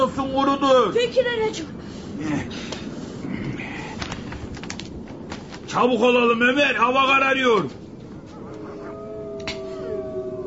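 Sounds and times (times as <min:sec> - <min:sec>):
speech: 0:00.2 - 0:02.7, 0:05.8 - 0:07.8
large pack of hungry wolves howling in snowy weather: 0:08.2 - 0:10.4.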